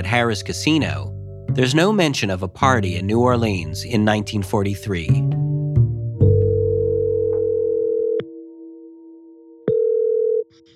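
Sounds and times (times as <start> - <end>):
speech: 0.0 - 5.3
phone line ringing tone on an outgoing call: 6.3 - 8.4, 9.7 - 10.7.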